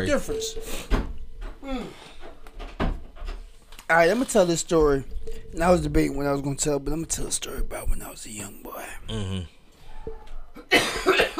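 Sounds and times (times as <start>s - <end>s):
speech: 0.0s - 1.0s, 1.6s - 2.1s, 3.9s - 11.3s
low vocal sounds: 9.0s - 9.6s
person coughing harshly into a microphone: 10.6s - 11.3s.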